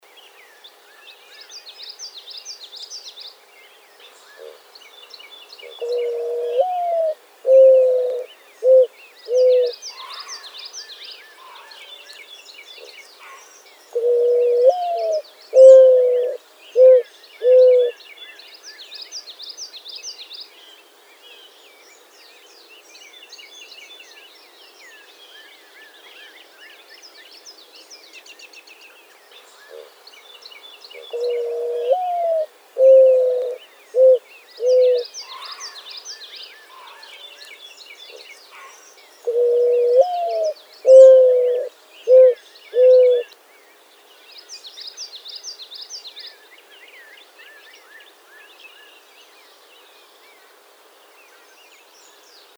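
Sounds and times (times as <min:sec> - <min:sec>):
mourning dove cooing: 0:05.6 - 0:10.4, 0:13.3 - 0:18.0, 0:31.0 - 0:35.8, 0:38.6 - 0:43.3.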